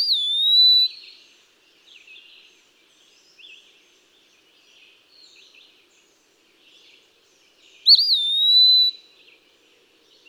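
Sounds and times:
eastern wood-pewee whistled song: 0.0 - 1.2, 7.8 - 9.1.

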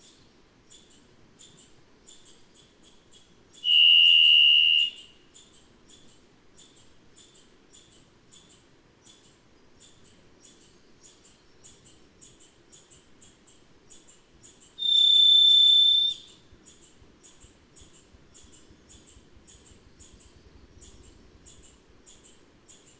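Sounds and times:
varied thrush buzzy whistle: 3.6 - 5.1, 14.8 - 16.3.

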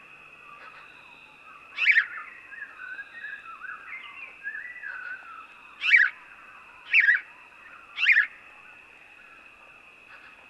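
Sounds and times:
faint steady tone: 0.0 - 10.4
house sparrow chirps: 1.7 - 6.2, 6.8 - 7.3, 7.9 - 8.3.

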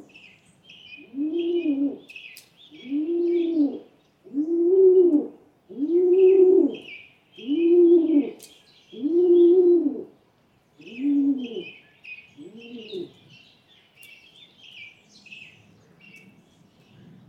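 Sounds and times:
faint high twittering of small birds: 0.0 - 17.2
Rock Pigeon burbling coo: 1.0 - 2.2, 2.8 - 8.4, 9.0 - 10.1, 10.8 - 11.8, 12.4 - 13.2.

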